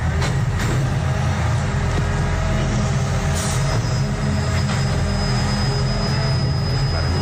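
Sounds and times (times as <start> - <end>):
old garbage truck engine and hydraulics collecting a cardboard recycling container at night: 0.0 - 7.2
thin high squeal: 3.4 - 7.2.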